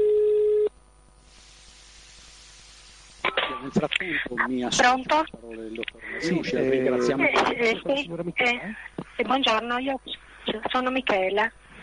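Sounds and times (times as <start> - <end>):
telephone ringing tone of an outgoing call: 0.0 - 0.7
speech: 3.7 - 11.6.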